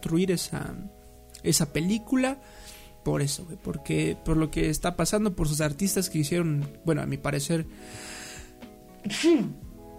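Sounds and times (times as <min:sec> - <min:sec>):
speech: 0:00.0 - 0:08.2, 0:09.0 - 0:09.7
single sharp sneeze: 0:09.1 - 0:09.6.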